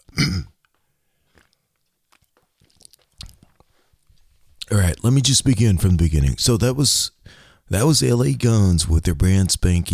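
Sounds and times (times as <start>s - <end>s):
quiet wet mouth clicks: 0.0s - 4.7s
person taking a quick sip of a drink: 1.2s - 4.3s
speech: 4.7s - 9.9s.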